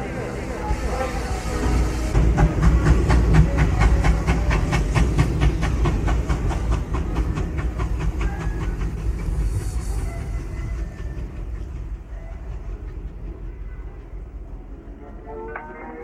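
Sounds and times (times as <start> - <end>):
train hiss: 0.0 - 12.7
train wheels clattering over rail joints: 1.6 - 14.7.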